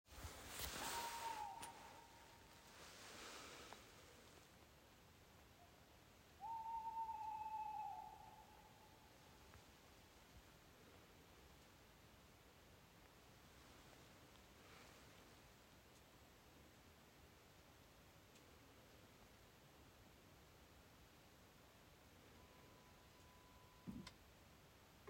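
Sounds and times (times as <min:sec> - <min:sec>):
owl calling in Finnskogen: 0:00.5 - 0:03.6, 0:06.4 - 0:09.1.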